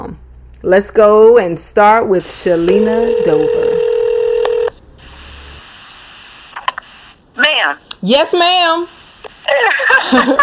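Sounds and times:
speech: 0:00.0 - 0:03.8, 0:08.0 - 0:10.4
telephone dial tone: 0:02.2 - 0:05.6
telephone line hiss: 0:02.2 - 0:07.5
telephone keypad beeps: 0:02.3 - 0:04.8
laughter: 0:09.4 - 0:10.4.

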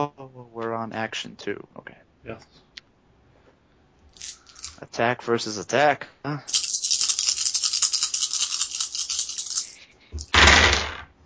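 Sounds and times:
speech: 0:00.9 - 0:02.7, 0:04.2 - 0:06.6
handful of dice rattling: 0:04.2 - 0:04.8, 0:06.5 - 0:11.0
dice clattering across a hard surface: 0:06.5 - 0:11.0.

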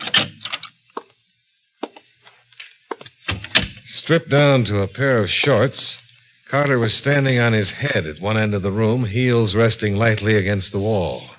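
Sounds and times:
door opening with a clunk: 0:00.0 - 0:00.7
speech: 0:04.0 - 0:11.3.

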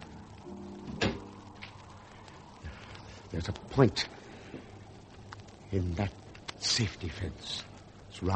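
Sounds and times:
low hum: 0:00.0 - 0:08.3
terrace door closing with a thud: 0:00.9 - 0:01.3
speech: 0:03.3 - 0:04.2, 0:05.7 - 0:08.3.

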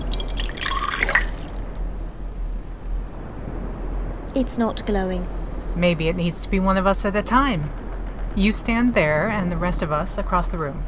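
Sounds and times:
saline and water mixture being poured: 0:00.0 - 0:01.8
quiet low hum: 0:00.0 - 0:10.8
speech: 0:04.4 - 0:07.8, 0:08.4 - 0:10.8.

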